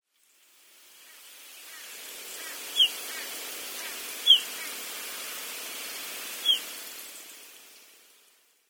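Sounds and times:
Pied Bush Chat calling in Akune: 2.4 - 3.3, 4.2 - 4.7, 6.4 - 6.7.

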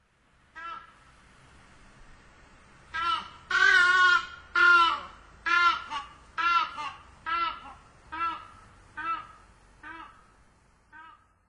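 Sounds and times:
toki calling on Sado: 0.5 - 1.0, 2.9 - 10.3, 10.9 - 11.4.

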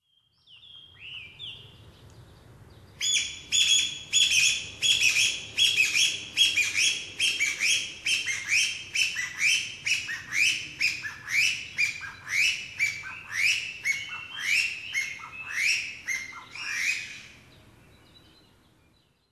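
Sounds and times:
Chinese bamboo partridge calling: 3.0 - 17.3.

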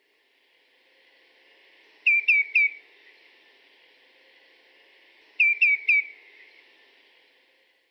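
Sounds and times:
Common Greenshank calling: 2.1 - 2.8, 5.4 - 6.2.

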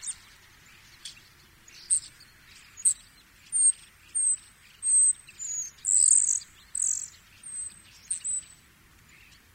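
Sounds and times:
common starling calls: 0.0 - 9.4.

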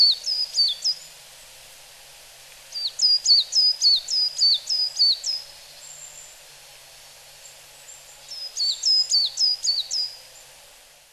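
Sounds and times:
coal tit calls in Okayama Japan: 0.0 - 1.0, 2.7 - 5.4, 8.2 - 10.2.

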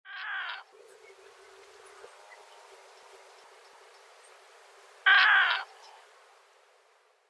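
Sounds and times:
Pacific Reef Heron calling in Fukuoka: 0.1 - 2.1, 5.1 - 6.0.

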